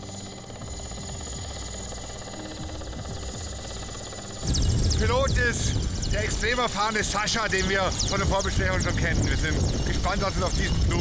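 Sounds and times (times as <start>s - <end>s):
large Mi-8 helicopter engine and rotor in Kamchatka: 0.0s - 11.0s
speech: 5.0s - 11.0s.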